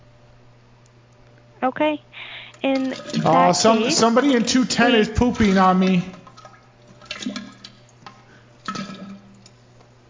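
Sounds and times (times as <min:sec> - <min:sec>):
low steady hum: 0:00.0 - 0:10.0
speech: 0:01.6 - 0:06.2
toilet flushing: 0:02.7 - 0:09.6.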